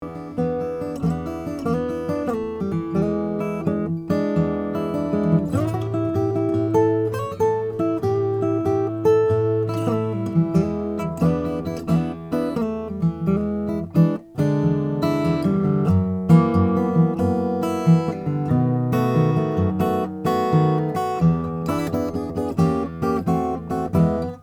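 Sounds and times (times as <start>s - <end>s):
all-mahogany acoustic guitar: 0.0s - 24.4s.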